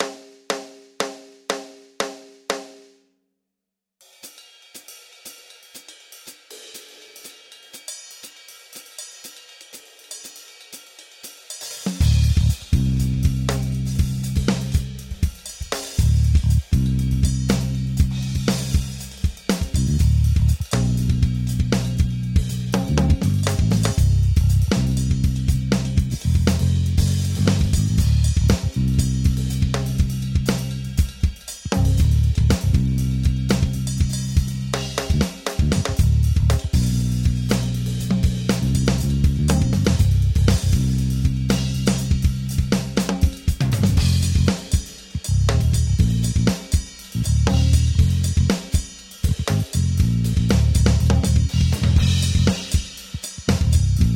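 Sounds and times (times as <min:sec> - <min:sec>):
backing music: 0:11.8 - 0:54.1.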